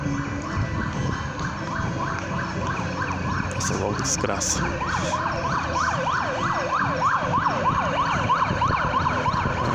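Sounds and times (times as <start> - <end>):
ambulance siren wailing outside: 0.0 - 9.7
speech: 3.6 - 8.7.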